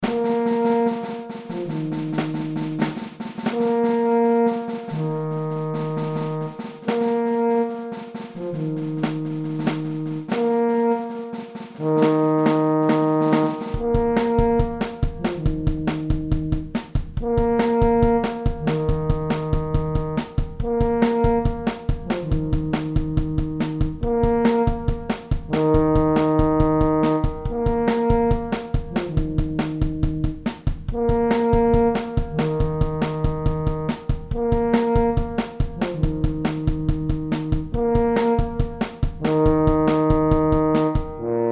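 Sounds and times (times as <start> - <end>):
drum kit: 0.0 - 41.3
tuba: 0.0 - 41.5.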